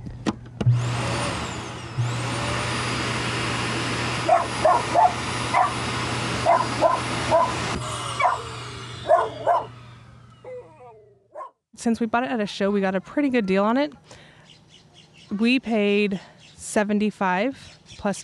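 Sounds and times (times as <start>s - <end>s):
built-in RV vacuum roaring: 0.6s - 11.2s
dog barking: 4.3s - 5.8s, 6.4s - 7.6s, 8.2s - 9.7s, 11.3s - 11.6s
speech: 11.8s - 14.2s, 15.3s - 18.2s.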